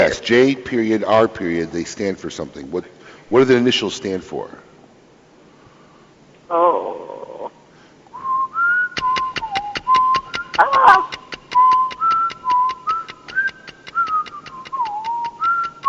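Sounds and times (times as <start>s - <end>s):
speech: 0.0s - 4.6s, 6.5s - 7.1s
brief vocal exclamation: 6.5s - 7.6s, 10.6s - 11.3s
person whistling a wavering melody: 8.2s - 15.8s
rapid steady clicking beat: 9.0s - 15.8s.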